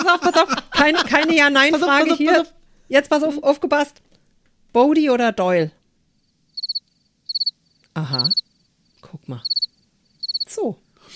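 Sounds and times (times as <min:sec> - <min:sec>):
speech: 0:00.1 - 0:04.1, 0:04.7 - 0:05.8, 0:08.0 - 0:08.4, 0:09.1 - 0:09.6, 0:10.5 - 0:11.1
cricket chirping sound effect: 0:06.1 - 0:11.1.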